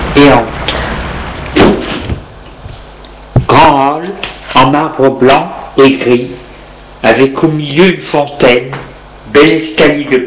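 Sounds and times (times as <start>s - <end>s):
speech: 0.1s - 0.8s, 4.1s - 6.4s, 7.0s - 10.2s
apartment building front door heavy thud: 1.5s - 2.3s.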